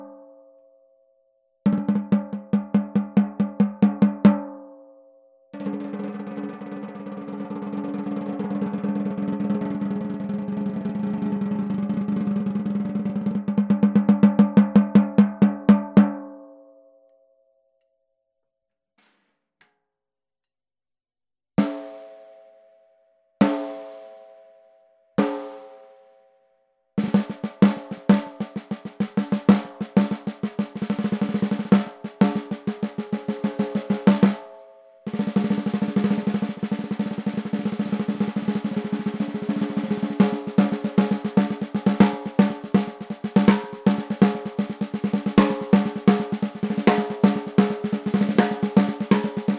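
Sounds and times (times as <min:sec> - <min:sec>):
14x5 snare drum: 0:01.7 - 0:04.4, 0:05.6 - 0:16.1, 0:19.0 - 0:19.3, 0:27.0 - 0:34.5, 0:35.1 - 0:49.5.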